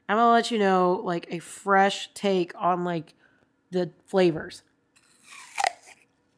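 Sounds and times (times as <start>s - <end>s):
speech: 0.1s - 4.7s
crisp bite into a crunchy apple: 5.0s - 6.3s.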